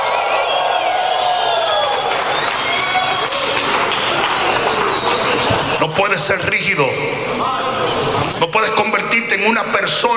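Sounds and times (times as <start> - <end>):
large audience shouting and cheering in victory: 0.0 - 6.1
scattered claps: 0.7 - 5.8
speech: 6.0 - 7.6, 8.4 - 10.1.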